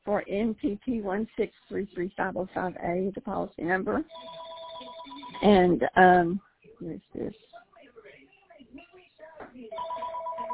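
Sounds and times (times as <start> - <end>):
narrow-band talking: 0.0 - 10.5
speech: 0.1 - 7.6
telephone ringing with a continuous electronic trill: 4.1 - 5.6, 9.7 - 10.5.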